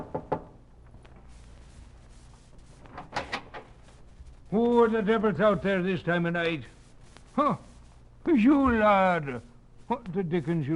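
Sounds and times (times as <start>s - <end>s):
knocking on a cabin door: 0.0s - 0.6s
speech: 4.5s - 6.8s, 7.4s - 10.7s.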